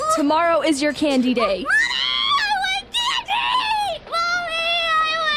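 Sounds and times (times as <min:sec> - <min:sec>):
speech: 0:00.2 - 0:02.0
young child screaming and crying in a tantrum over candy: 0:01.6 - 0:05.2.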